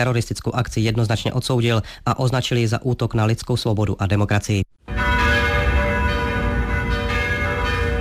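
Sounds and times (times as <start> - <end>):
speech: 0.0 - 4.8
bells of all the churches in Prague ringing together: 4.8 - 7.9.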